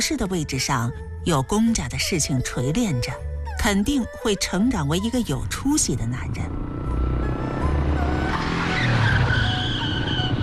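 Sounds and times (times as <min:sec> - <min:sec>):
speech: 0:00.0 - 0:06.7
motorcycle tires screeching while skidding to a halt: 0:06.5 - 0:10.4.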